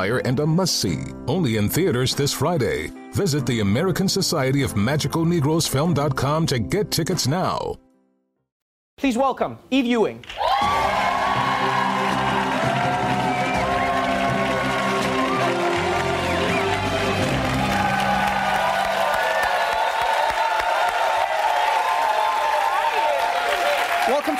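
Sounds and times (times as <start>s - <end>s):
speech: 0.0s - 7.8s, 9.0s - 10.9s
large crowd cheering, whooping and shouting: 10.3s - 24.3s.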